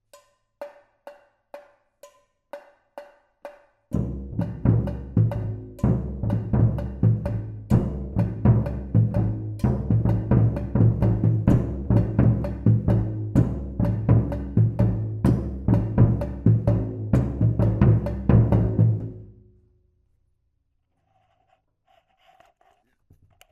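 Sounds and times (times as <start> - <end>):
surdo drums playing a marcha: 4.0 - 19.1.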